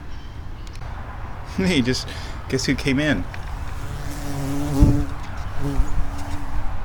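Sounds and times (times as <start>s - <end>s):
speech: 1.6s - 3.4s
large bee buzzing inside a bird-watching blind: 3.4s - 6.8s.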